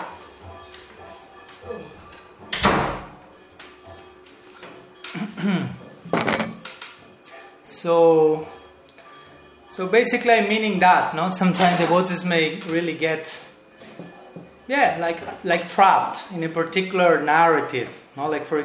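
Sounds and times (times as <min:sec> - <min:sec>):
speech: 0:05.4 - 0:06.2, 0:07.8 - 0:08.6, 0:09.8 - 0:13.5, 0:14.7 - 0:18.6
short squeaky door creak: 0:06.1 - 0:06.6.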